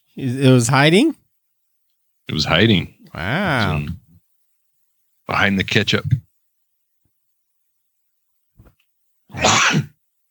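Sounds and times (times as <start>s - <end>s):
speech: 0.2s - 1.2s, 2.3s - 4.0s, 5.3s - 6.2s, 9.3s - 9.9s
person sneezing: 9.3s - 10.0s.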